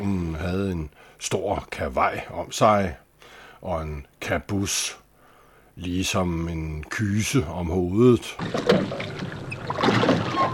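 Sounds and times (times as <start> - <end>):
speech: 0.0 - 3.0, 3.6 - 5.0, 5.8 - 9.2
small boat creaking coming ashore: 8.4 - 10.5
soft water splashing of a small boat coming ashore: 8.4 - 10.5.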